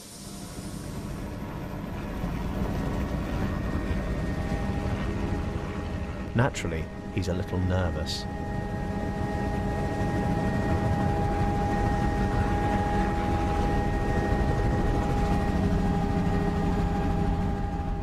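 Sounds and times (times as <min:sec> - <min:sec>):
helicopter engine roar heard from inside the cabin: 0:00.0 - 0:18.0
speech: 0:06.4 - 0:08.4.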